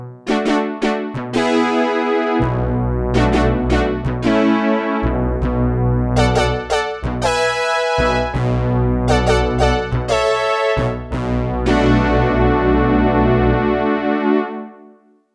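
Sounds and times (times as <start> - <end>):
analog spread synthesizer pad: 0.3 - 14.9.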